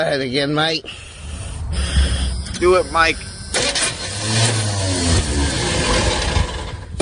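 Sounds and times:
speech: 0:00.0 - 0:01.1, 0:01.7 - 0:03.3, 0:04.2 - 0:05.1
truck engine cranking without catching: 0:01.8 - 0:07.0.

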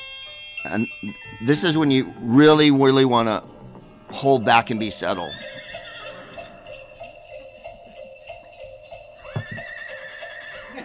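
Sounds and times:
speech: 0:00.6 - 0:03.5, 0:04.1 - 0:05.6
dense steady background of tonal noise: 0:00.8 - 0:10.8
horse neighing: 0:05.1 - 0:07.0, 0:09.2 - 0:10.8.

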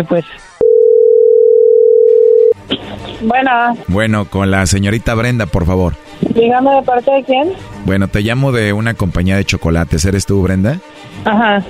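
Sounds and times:
speech: 0:00.0 - 0:00.5, 0:02.7 - 0:11.6
telephone dial tone of an outgoing call: 0:00.6 - 0:02.6.

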